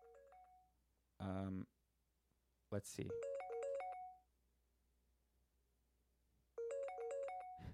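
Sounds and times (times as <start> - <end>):
speech: 1.2 - 1.8, 2.7 - 3.3
outgoing phone call ringback chiming tone: 3.1 - 4.2, 6.6 - 7.7.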